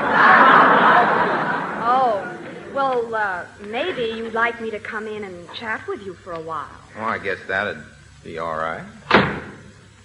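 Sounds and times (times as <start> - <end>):
laughter: 0.0 - 3.0
speech: 3.4 - 9.4
hotel door being shut: 9.0 - 9.7.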